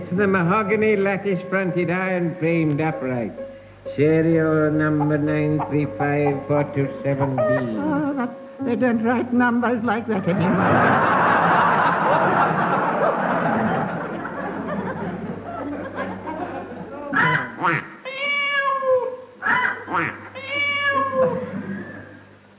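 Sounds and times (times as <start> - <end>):
speech: 0.1 - 11.4
person's voice imitating a chicken a duck and a cat: 4.8 - 8.3, 17.0 - 21.5
laughter: 10.1 - 17.6, 21.0 - 22.2.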